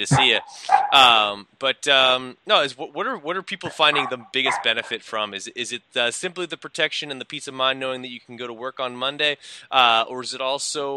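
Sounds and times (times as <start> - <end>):
speech: 0.0 - 10.9
dog giving loud strained tonal calls and a yelp: 0.1 - 1.1, 3.7 - 5.0.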